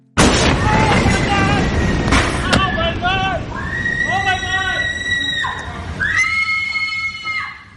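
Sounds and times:
heavy bang: 0.2s - 3.6s
massive explosion destroying a city: 0.2s - 4.1s
people shouting frantically: 0.6s - 7.7s
wailing cries: 3.6s - 7.7s.

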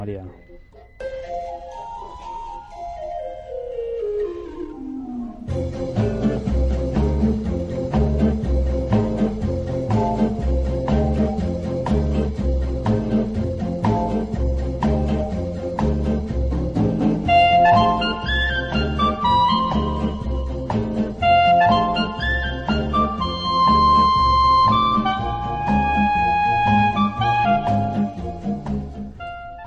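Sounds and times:
speech: 0.0s - 1.4s
perky organ-like melody lines: 0.0s - 29.6s
playful bouncy film score music for a safari film: 0.0s - 29.6s
plodding bass beat: 5.5s - 29.0s.

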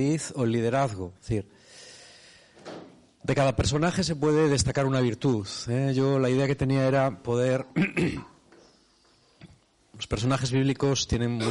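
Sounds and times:
speech: 0.0s - 1.7s, 3.2s - 8.3s, 10.0s - 11.4s
quiet breathing: 1.5s - 2.7s, 8.6s - 9.6s
rough throat-clearing cough from a person with a bad cold: 7.8s - 8.4s.

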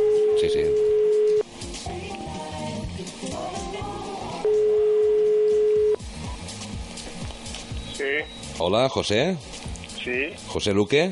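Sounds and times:
telephone ringing tone as a radio station dials a prize winner: 0.0s - 1.4s, 4.4s - 6.0s
music: 0.0s - 11.1s
speech: 8.6s - 11.1s.

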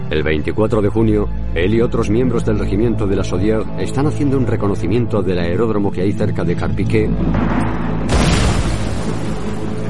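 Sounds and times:
speech: 0.1s - 8.0s
grenade explosion: 7.4s - 9.8s.

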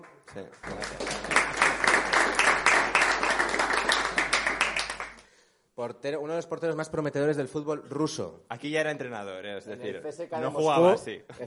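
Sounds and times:
speech: 0.3s - 1.0s, 5.8s - 11.4s
audience applause: 0.6s - 5.2s.

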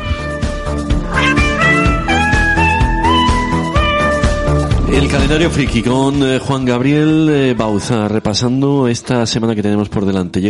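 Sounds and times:
cat meows pitch-corrected into an autotuned singing line: 0.0s - 0.6s
pounding beat and bass: 0.0s - 7.8s
speech: 5.0s - 10.4s.

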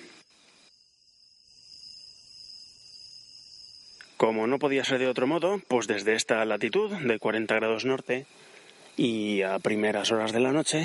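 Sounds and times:
dense chorus of crickets chirping outdoors at night: 0.0s - 10.8s
speech: 4.2s - 10.8s.

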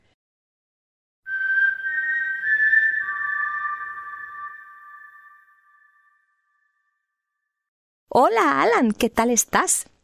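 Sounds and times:
whistled bird-call tune as intro jingle: 1.3s - 7.2s
speech: 8.1s - 10.0s.

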